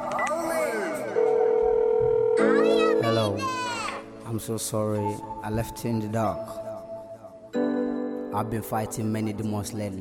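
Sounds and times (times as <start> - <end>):
telephone ringing for incoming call: 0.2 - 3.6
speech: 4.3 - 6.7, 8.3 - 9.9.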